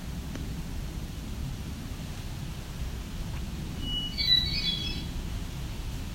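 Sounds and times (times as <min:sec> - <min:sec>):
steady low rumble of outdoor noise: 0:00.0 - 0:06.1
warbler ticking alarm call: 0:03.8 - 0:05.1.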